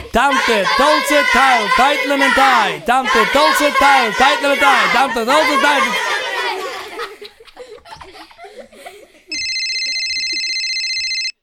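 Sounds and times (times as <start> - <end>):
speech: 0.1 - 6.0
laughter: 5.5 - 10.8
loud electronic telephone ringing: 9.3 - 11.4.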